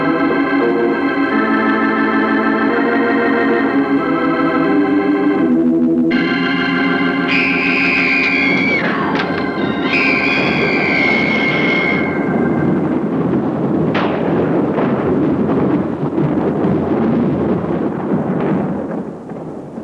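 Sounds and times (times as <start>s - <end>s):
sharp thunder crack: 0.0s - 5.5s, 6.1s - 19.8s
sustained organ-like tone: 0.0s - 13.4s
loud continuous storm rumble: 0.0s - 19.8s.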